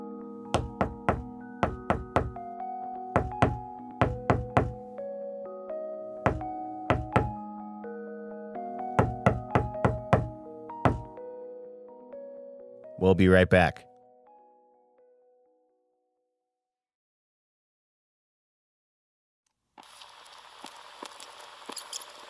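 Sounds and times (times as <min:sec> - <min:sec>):
knocking on a door: 0:00.6 - 0:02.4, 0:03.2 - 0:04.8, 0:06.3 - 0:07.4, 0:09.0 - 0:11.1
speech: 0:13.0 - 0:13.9.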